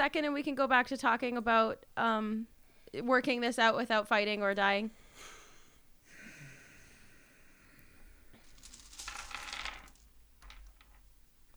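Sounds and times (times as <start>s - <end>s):
speech: 0.0s - 5.4s
dice rattling on a hard surface: 8.4s - 11.5s.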